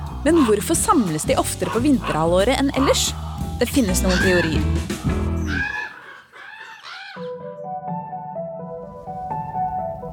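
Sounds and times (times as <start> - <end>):
flock of crows cawing loudly and harshly: 0.0 - 7.4
speech: 0.2 - 5.2.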